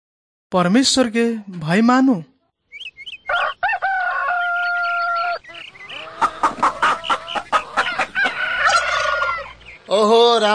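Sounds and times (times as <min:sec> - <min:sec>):
speech: 0:00.5 - 0:02.3, 0:09.9 - 0:10.5
rooster crowing loudly while being slaughtered: 0:03.3 - 0:09.6.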